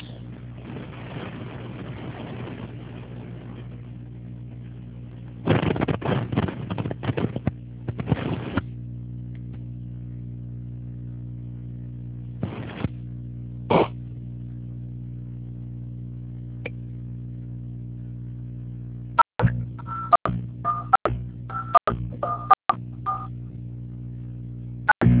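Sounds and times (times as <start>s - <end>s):
low hum: 0.0s - 25.1s
telephone keypad dialing tones while adding a caller to a group call: 19.8s - 23.3s.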